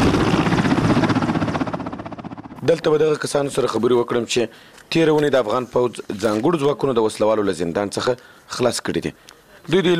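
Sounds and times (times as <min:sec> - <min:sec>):
Afghan national army helicopter rotor chopping: 0:00.0 - 0:03.6
speech: 0:02.7 - 0:09.9.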